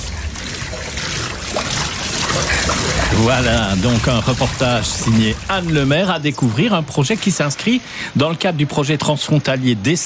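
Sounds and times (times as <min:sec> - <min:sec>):
water flowing from a push-button tap: 0:00.0 - 0:06.7
speech: 0:03.2 - 0:10.0.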